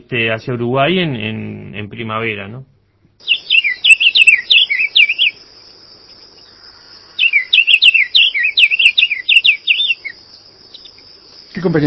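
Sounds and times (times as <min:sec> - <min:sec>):
faint steady insect hum: 0:00.0 - 0:11.8
speech: 0:00.1 - 0:03.4, 0:11.6 - 0:11.8
blue cardinal singing whistled notes: 0:03.2 - 0:05.5, 0:06.4 - 0:11.0.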